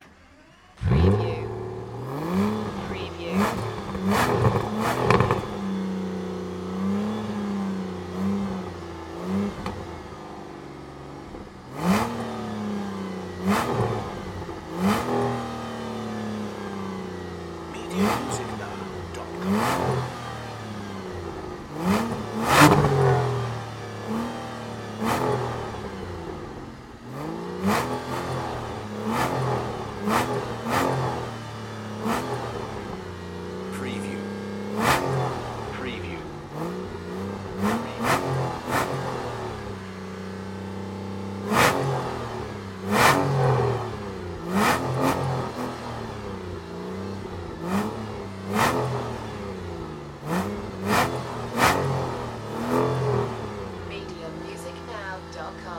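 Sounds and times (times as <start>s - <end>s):
Aston Martin DB9 engine starting: 0.0s - 55.7s.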